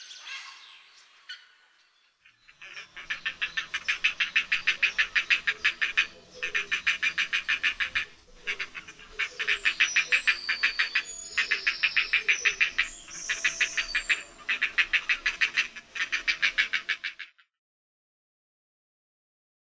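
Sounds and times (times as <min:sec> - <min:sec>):
grey heron calling: 0:02.3 - 0:17.3.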